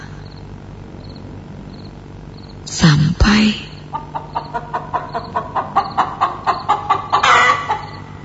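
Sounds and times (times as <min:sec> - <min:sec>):
speech: 0:02.8 - 0:03.6
chicken clucking behind the window of a dark house: 0:03.9 - 0:08.1.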